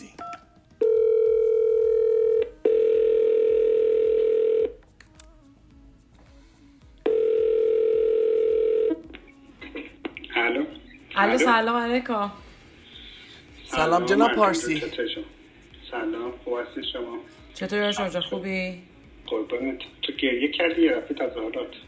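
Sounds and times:
telephone call ringback tones: 0.2s - 4.8s, 7.1s - 9.0s
speech: 11.2s - 12.4s, 13.8s - 21.8s.

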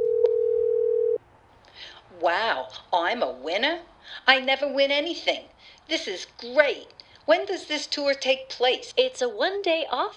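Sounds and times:
telephone dial tone as a call is placed from a tour company's home office: 0.0s - 1.2s
speech: 2.2s - 10.1s.

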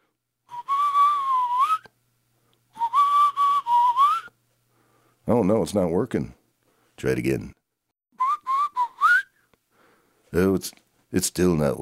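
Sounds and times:
person whistling to call a rat: 0.5s - 1.9s, 2.8s - 4.4s, 8.2s - 9.5s
speech: 5.3s - 6.4s, 7.0s - 7.6s, 10.3s - 11.8s.

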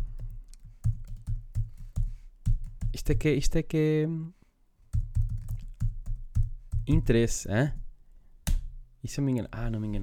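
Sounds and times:
typing a long password on a computer keyboard: 0.2s - 3.0s, 5.0s - 7.1s
speech: 3.0s - 4.4s, 6.9s - 7.8s, 9.0s - 10.0s.

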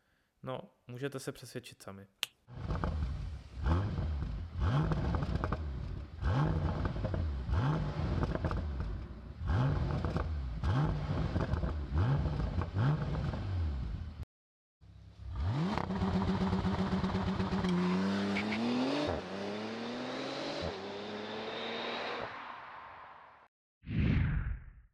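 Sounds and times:
speech: 0.4s - 2.9s
6-litre twin-turbo V12 car engine of 630 horsepower revving: 2.5s - 14.1s, 15.2s - 22.4s.

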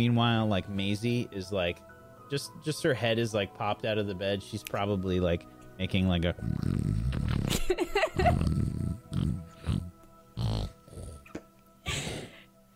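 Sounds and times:
speech: 0.0s - 7.7s
person imitating loud exaggerated snoring: 6.4s - 7.6s, 8.2s - 12.4s.

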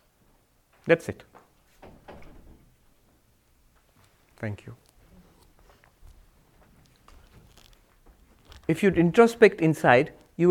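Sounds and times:
speech: 0.8s - 1.4s, 4.4s - 4.8s, 8.7s - 10.4s
door pulled shut thudding into its frame: 1.8s - 2.8s.

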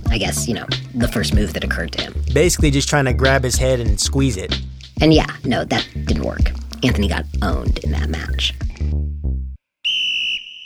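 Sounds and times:
speech: 0.1s - 8.6s
coach blowing a shrill whistle during a match: 9.8s - 10.6s.

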